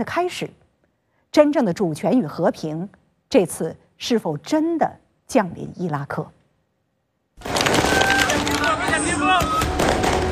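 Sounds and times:
speech: 0.0 - 0.6, 1.3 - 6.4, 8.6 - 10.1
fireworks exploding: 7.4 - 10.3
crowd noise: 7.5 - 10.3.

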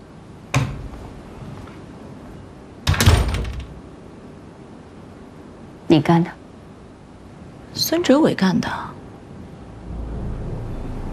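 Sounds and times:
door being closed with dull thuds: 0.5 - 1.1, 2.8 - 3.8
heavier rattling door bang: 2.8 - 3.8
speech: 5.9 - 6.4, 7.8 - 8.9.

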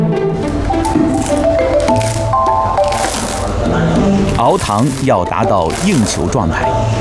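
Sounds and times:
soft tonal music: 0.0 - 7.0
thick sticky hot sugar syrup swirled in a pot: 0.8 - 6.4
speech: 4.5 - 7.0.

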